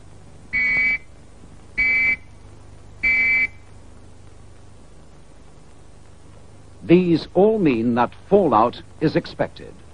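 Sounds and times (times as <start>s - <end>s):
faint low hum: 0.0s - 9.9s
loud shrill warning whistles: 0.5s - 1.1s, 1.8s - 2.3s, 3.0s - 3.6s
speech: 6.9s - 9.8s.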